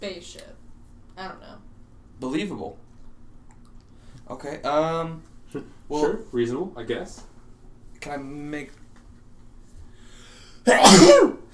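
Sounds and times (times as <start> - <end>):
speech: 0.0 - 0.6, 1.2 - 2.8, 4.3 - 7.3, 8.0 - 8.8, 10.6 - 11.4
person sneezing: 10.6 - 11.5.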